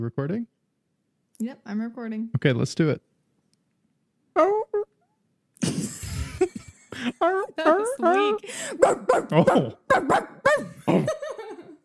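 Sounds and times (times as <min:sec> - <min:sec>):
speech: 0:00.0 - 0:00.6, 0:01.4 - 0:03.1, 0:04.4 - 0:04.8, 0:06.4 - 0:11.5
person imitating a dog barking: 0:04.4 - 0:05.0, 0:07.2 - 0:11.4
laughter: 0:05.6 - 0:08.4, 0:10.5 - 0:11.8.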